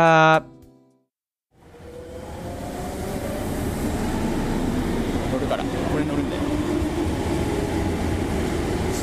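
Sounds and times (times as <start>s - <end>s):
speech: 0.0s - 0.6s
moving train rumble heard from inside a carriage: 1.6s - 9.0s.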